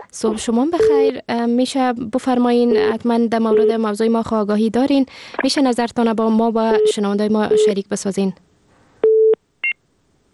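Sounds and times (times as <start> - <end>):
speech: 0.1 - 8.5
telephone line low beep after a dropped call: 9.0 - 9.8.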